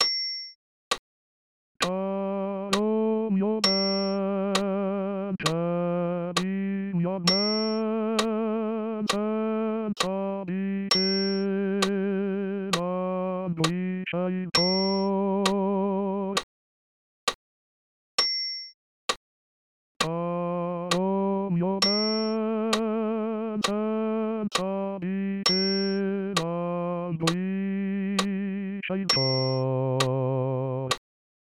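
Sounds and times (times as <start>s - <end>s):
bass voice singing: 1.8s - 16.4s, 20.0s - 31.0s.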